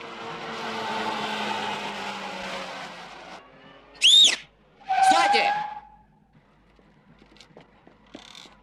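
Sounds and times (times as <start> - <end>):
car tire screech while skidding and turning around: 0.0 - 6.2
car engine droning: 0.0 - 8.1
footsteps running toward a car: 6.7 - 8.6.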